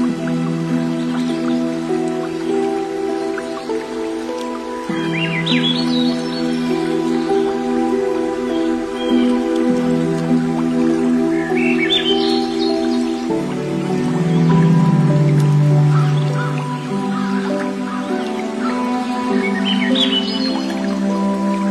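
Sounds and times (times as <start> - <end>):
bright bird chirps: 0.0 - 21.7
faint trickle of dripping water: 0.0 - 21.7
soft sustained piano chords: 0.0 - 21.7.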